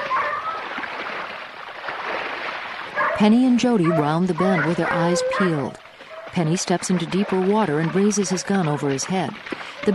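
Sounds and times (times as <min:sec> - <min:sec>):
dogs splashing through a shallow pond while chasing a bear: 0:00.0 - 0:09.9
speech: 0:03.2 - 0:09.9.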